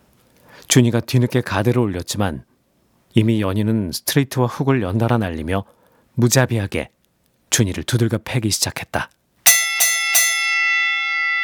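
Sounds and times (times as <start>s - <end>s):
speech: 0.7s - 2.5s, 3.1s - 9.2s
boxing round bell ringing: 9.5s - 11.4s.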